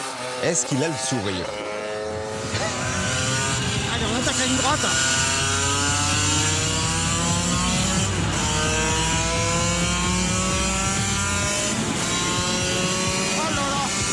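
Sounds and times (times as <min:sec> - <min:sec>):
35-year-old motorcycle engine revving high on a straight: 0:00.0 - 0:14.1
speech: 0:00.4 - 0:01.8, 0:04.7 - 0:05.2.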